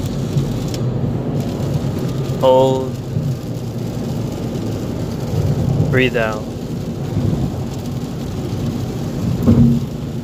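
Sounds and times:
steady rain during a car drive: 0.0s - 10.2s
heavier rain or thunder: 1.8s - 10.2s
speech: 2.4s - 3.0s, 5.9s - 6.5s
low rumble: 3.0s - 10.2s.

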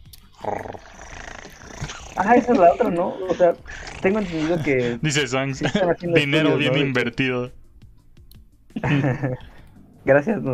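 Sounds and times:
person imitating a cat purring with the voice: 0.4s - 5.0s
laughter: 2.2s - 7.4s, 8.8s - 9.4s
speech: 2.2s - 7.6s, 8.8s - 10.5s.

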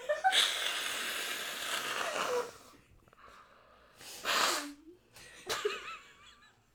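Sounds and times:
person blowing their nose: 0.3s - 2.7s, 4.0s - 4.8s.

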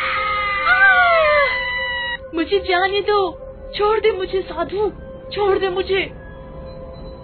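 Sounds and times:
eerie high-pitched scream: 0.0s - 2.2s
steady droning hum: 0.8s - 7.2s
speech: 2.4s - 6.2s.

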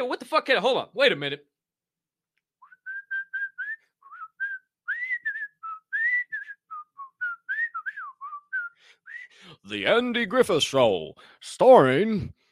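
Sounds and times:
speech: 0.0s - 1.5s, 9.6s - 12.4s
person whistling a bouncy TV theme tune: 2.6s - 9.5s.

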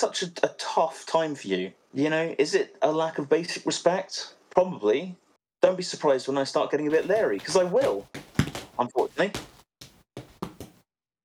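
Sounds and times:
speech: 0.0s - 8.2s, 8.8s - 9.5s
female cat clawing a chair: 6.9s - 10.8s.

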